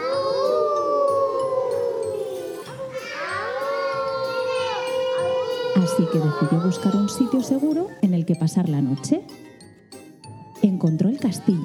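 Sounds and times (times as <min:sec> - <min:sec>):
wolves howling at night: 0:00.0 - 0:07.6
speech: 0:05.8 - 0:09.5, 0:10.8 - 0:11.6.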